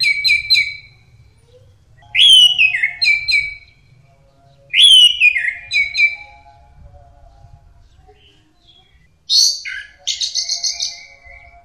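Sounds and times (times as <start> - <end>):
bird song with whistle and rapid rattling trill: 0.0 - 1.0, 2.0 - 3.8, 4.7 - 6.6, 9.3 - 11.6.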